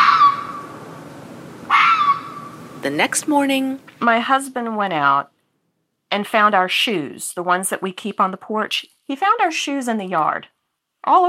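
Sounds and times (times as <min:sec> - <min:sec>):
fox shrieking shrilly outside a bedroom window in Northern Virginia: 0:00.0 - 0:00.7, 0:01.7 - 0:02.6
speech: 0:02.8 - 0:05.3, 0:06.1 - 0:11.2.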